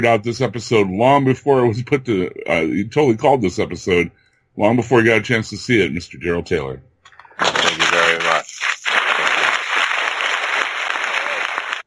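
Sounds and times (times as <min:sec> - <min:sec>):
speech: 0:00.0 - 0:07.5
dense crinkling and crumpling noise used as fake applause: 0:07.3 - 0:11.8.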